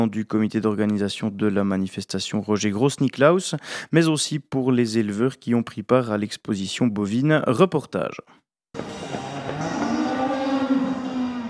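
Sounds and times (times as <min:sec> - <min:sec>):
speech: 0:00.0 - 0:08.8
cow mooing at a cattle exhibition: 0:08.8 - 0:11.4
crowd noise at a cattle exhibition: 0:08.8 - 0:11.4.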